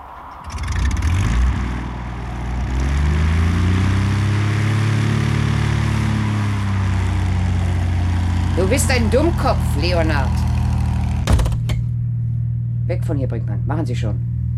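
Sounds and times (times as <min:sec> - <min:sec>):
engine starting and revving: 0:00.2 - 0:11.7
speech: 0:08.7 - 0:10.5, 0:12.9 - 0:14.3.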